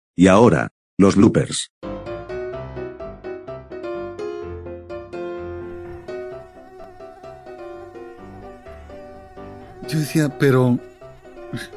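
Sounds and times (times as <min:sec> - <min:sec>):
speech: 0:00.2 - 0:01.8, 0:09.9 - 0:10.9, 0:11.5 - 0:11.7
mosquito whining: 0:05.6 - 0:11.7.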